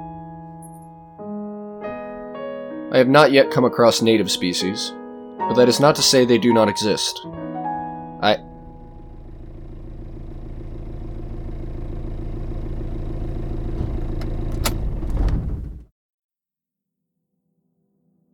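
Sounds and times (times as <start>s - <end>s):
speech: 2.9s - 7.4s, 8.2s - 8.5s
low droning grumble of approaching vehicle engines: 8.4s - 15.8s.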